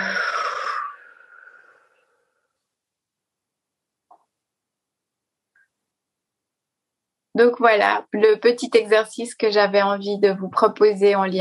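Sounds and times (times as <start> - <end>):
deep breath in and out during a guided relaxation exercise: 0.0 - 2.7
speech: 7.4 - 11.3.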